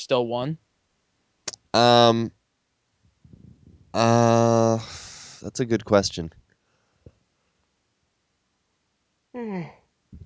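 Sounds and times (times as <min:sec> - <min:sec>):
speech: 0:00.0 - 0:00.7, 0:01.7 - 0:02.4, 0:03.9 - 0:06.4, 0:09.4 - 0:09.8
person yawning: 0:04.0 - 0:05.2.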